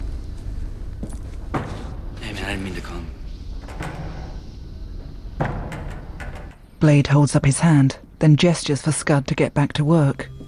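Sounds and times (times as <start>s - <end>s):
low steady rumble: 0.0s - 10.4s
heavy metal door closing in a workshop: 1.4s - 7.1s
speech: 2.6s - 3.2s, 6.8s - 10.4s.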